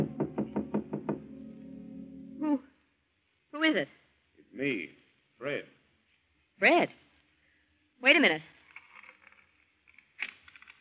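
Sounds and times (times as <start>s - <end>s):
quick sharp knocks on an apartment door: 0.0s - 1.3s
speech: 3.7s - 4.0s, 4.6s - 5.8s, 6.6s - 7.0s, 8.0s - 8.5s.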